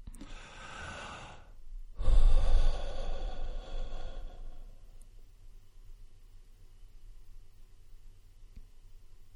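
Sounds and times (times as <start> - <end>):
deep noisy inhale: 0.0 - 4.9
long slow breathy exhale: 0.2 - 4.9.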